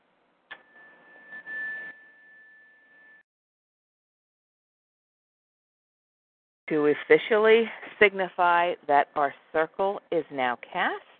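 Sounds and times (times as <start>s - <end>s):
meditation chime struck and ringing: 0.5s - 3.2s
speech: 6.7s - 11.1s.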